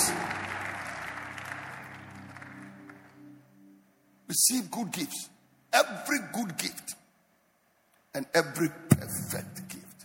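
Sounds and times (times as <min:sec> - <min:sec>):
large crowd clapping and cheering: 0:00.0 - 0:03.4
speech: 0:04.3 - 0:07.0, 0:08.2 - 0:09.8.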